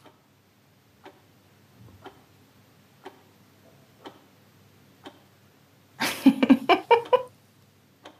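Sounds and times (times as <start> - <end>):
clock ticking in a quiet room: 0.0 - 0.3, 1.0 - 1.4, 2.0 - 2.4, 3.0 - 3.4, 4.0 - 4.4, 5.0 - 5.4, 6.9 - 7.3, 8.0 - 8.1.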